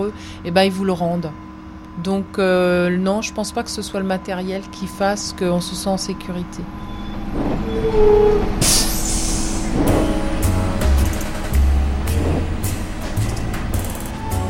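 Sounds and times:
city bus engine drone: 0.0 - 14.4
speech: 0.1 - 8.8
city bus air brakes hissing: 6.8 - 13.1
clunks inside a city bus: 7.0 - 14.3.

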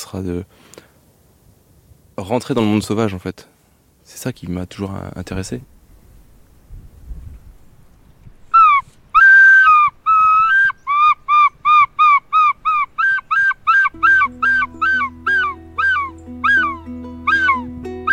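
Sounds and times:
speech: 0.1 - 0.9, 2.2 - 3.5, 4.1 - 5.7
person imitating bird calls: 8.6 - 18.1.

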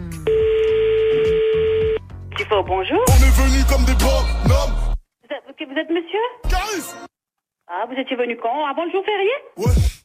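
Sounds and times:
telephone tone from a call to a dog grooming salon: 0.3 - 2.0
rhythmic musical bed: 2.4 - 5.0
speech: 2.5 - 4.4, 5.8 - 7.1, 7.8 - 9.9.

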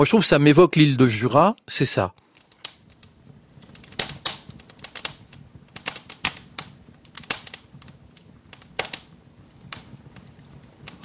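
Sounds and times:
speech: 0.0 - 2.2
fire crackling: 0.0 - 11.0.

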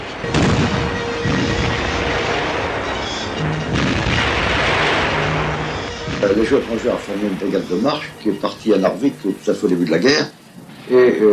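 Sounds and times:
naval squadron guns opening fire on Narvik: 0.0 - 11.3
speech: 6.2 - 11.3.

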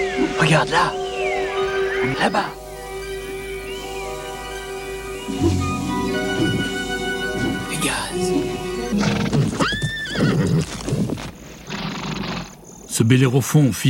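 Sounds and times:
speech: 0.2 - 1.0, 2.0 - 2.6, 7.9 - 9.1, 13.0 - 13.8
horse neighing: 5.4 - 12.6
horse hooves clip-clopping: 9.0 - 11.4.

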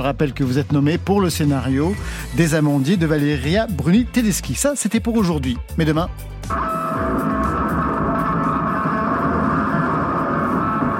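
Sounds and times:
speech: 0.0 - 7.2
droning ringing guitar string tones: 6.5 - 10.9
guitar dragged behind a truck grinding: 6.5 - 10.9.

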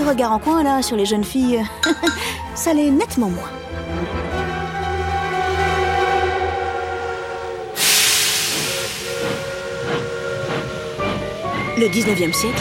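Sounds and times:
speech: 0.1 - 4.2, 11.8 - 12.6
steam locomotive whistle: 5.4 - 12.6
hissing steam from a steam locomotive: 7.7 - 12.1
steam locomotive rhythmic chuffing: 7.8 - 12.6.

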